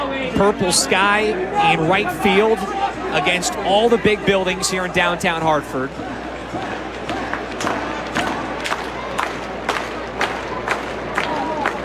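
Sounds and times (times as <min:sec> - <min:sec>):
speech: 0:00.4 - 0:06.6
crowd at an evening baseball game roaring: 0:05.8 - 0:11.8
sharp regularly spaced claps or thumps: 0:06.5 - 0:11.8.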